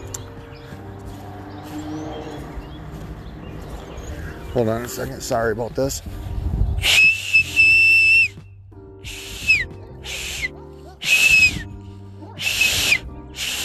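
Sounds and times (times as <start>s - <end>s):
speech: 4.5s - 7.0s
person whistling loudly to get attention: 6.8s - 8.4s, 9.0s - 13.6s.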